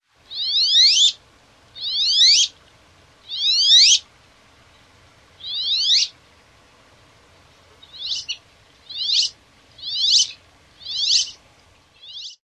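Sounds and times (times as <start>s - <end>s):
male Wood Duck squealing: 1.8s - 2.5s, 3.3s - 4.0s, 5.4s - 6.1s, 8.0s - 11.4s.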